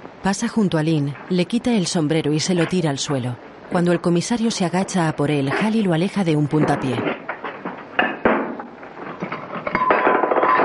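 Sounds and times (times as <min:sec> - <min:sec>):
speech: 0:00.2 - 0:07.2
dishes and crockery clinking as breakfast is served roughly in a crowded Western saloon: 0:06.5 - 0:10.6.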